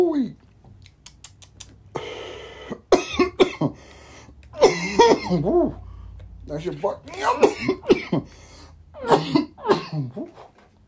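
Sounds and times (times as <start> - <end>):
person coughing after smoking: 2.0 - 3.8, 4.6 - 5.8, 7.1 - 8.4, 9.0 - 10.5
speech: 5.3 - 5.8, 6.5 - 10.5.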